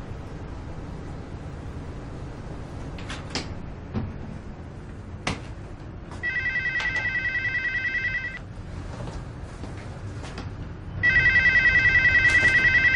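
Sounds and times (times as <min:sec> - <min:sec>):
telephone ringing unanswered in a home: 0:06.2 - 0:08.4, 0:11.0 - 0:12.9.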